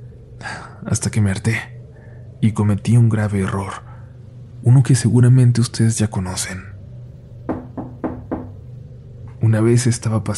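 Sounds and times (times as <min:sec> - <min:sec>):
steady low hum: 0:00.0 - 0:10.3
speech: 0:00.4 - 0:01.7, 0:02.4 - 0:03.9, 0:04.6 - 0:06.7, 0:09.5 - 0:10.3
firm knocks on a door: 0:07.5 - 0:08.7.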